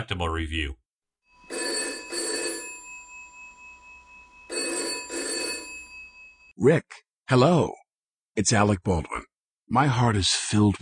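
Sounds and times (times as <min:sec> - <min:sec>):
speech: 0:00.0 - 0:00.8, 0:06.6 - 0:07.8, 0:08.4 - 0:10.8
telephone ringing in classic double-burst pattern: 0:01.3 - 0:06.5.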